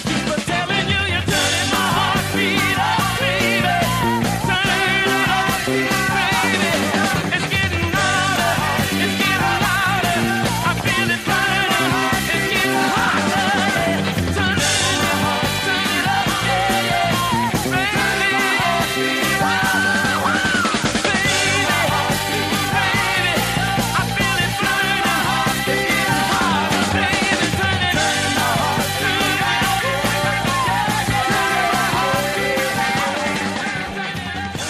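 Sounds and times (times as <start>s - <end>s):
70s disco soul record playing: 0.2s - 34.6s.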